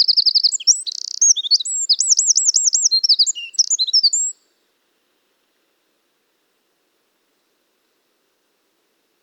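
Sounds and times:
Eurasian wren song: 0:00.0 - 0:04.5.

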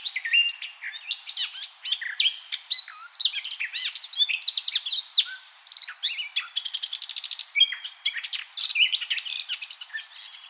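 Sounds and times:
Eurasian blackcap Sylvia atricapilla singing: 0:00.0 - 0:10.4.

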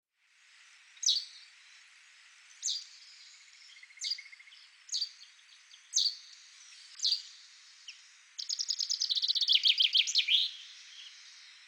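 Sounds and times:
common chaffinch Fringilla coelebs chirp notes: 0:01.0 - 0:01.4, 0:02.6 - 0:07.4, 0:08.4 - 0:11.4.

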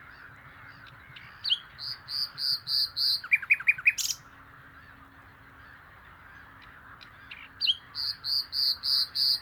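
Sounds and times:
Common nightingale song: 0:00.0 - 0:04.4, 0:06.6 - 0:09.4.

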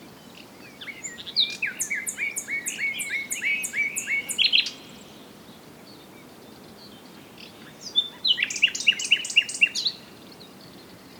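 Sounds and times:
common nightingale Luscinia megarhynchos click-and-chirp song: 0:00.2 - 0:05.0, 0:07.5 - 0:10.6.

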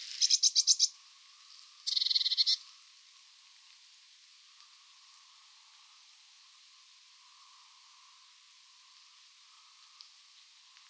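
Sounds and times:
Eurasian blue tit Cyanistes caeruleus churring: 0:00.2 - 0:00.9, 0:01.9 - 0:02.6.

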